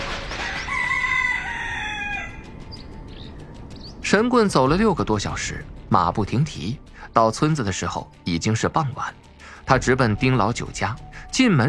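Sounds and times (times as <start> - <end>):
rooster crowing: 0.3 - 2.8
speech: 4.1 - 11.6.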